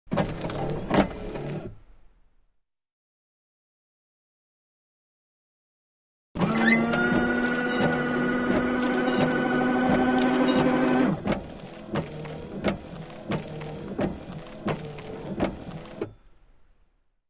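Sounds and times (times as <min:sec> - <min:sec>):
car windshield wipers: 0:00.1 - 0:01.8, 0:06.4 - 0:16.1
car windshield washer fluid spraying: 0:07.0 - 0:16.0.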